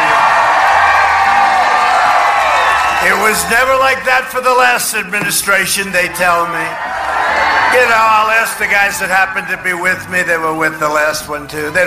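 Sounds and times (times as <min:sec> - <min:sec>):
large rally crowd lined up the road cheering and whooping: 0:00.0 - 0:03.8, 0:06.3 - 0:09.4
speech: 0:03.2 - 0:11.8.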